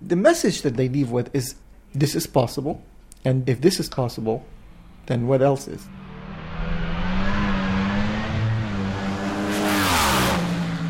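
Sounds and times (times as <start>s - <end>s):
speech: 0.1s - 6.0s
race car engine revving: 5.8s - 10.8s.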